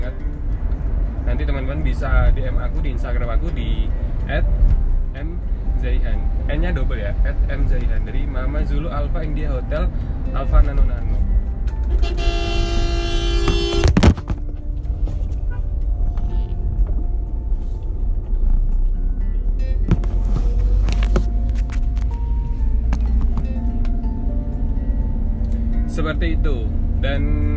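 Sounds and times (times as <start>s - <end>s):
engine drone of a moving car: 0.0s - 27.5s
road rumble inside a moving car: 0.0s - 27.5s
speech: 1.4s - 11.3s, 11.9s - 12.8s, 26.0s - 27.5s
car horn tooting: 11.9s - 14.2s.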